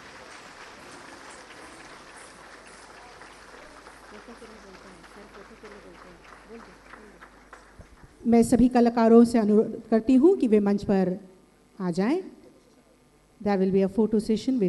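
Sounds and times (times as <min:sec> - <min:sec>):
murmur of voices: 0:00.0 - 0:07.3
large audience applause after a performance: 0:00.0 - 0:08.1
speech: 0:04.2 - 0:07.4, 0:08.2 - 0:12.4, 0:13.4 - 0:14.6.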